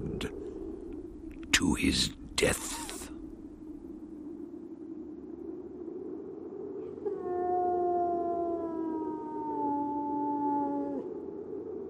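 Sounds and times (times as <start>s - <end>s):
low steady rumble: 0.0s - 6.1s
speech: 1.6s - 2.9s
hound howling mournfully: 7.0s - 11.1s.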